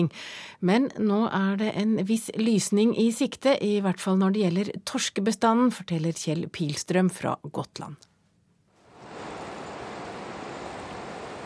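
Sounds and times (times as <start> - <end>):
speech: 0.0 - 8.1
surf rushing onto a shore in a fresh wind: 8.8 - 11.4.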